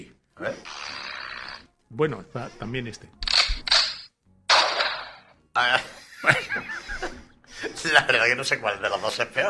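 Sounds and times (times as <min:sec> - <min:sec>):
speech: 0:00.4 - 0:00.8, 0:01.9 - 0:03.3, 0:05.6 - 0:06.7, 0:07.9 - 0:09.4
gunshot sound effects: 0:03.4 - 0:05.4
laughter: 0:05.6 - 0:08.4.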